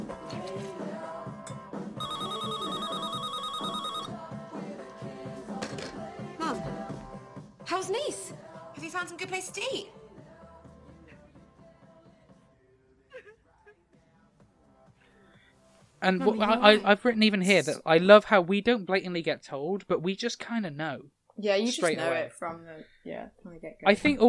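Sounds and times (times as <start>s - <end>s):
pop song playing as a mobile phone ringtone: 1.4s - 4.4s
speech: 9.0s - 10.0s, 16.1s - 24.2s.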